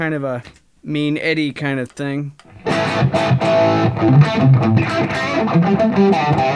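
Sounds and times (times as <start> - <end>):
speech: 0.0 - 6.5
Seafoam Green distorted electric guitar riff with split single-coil pickup: 2.5 - 6.5.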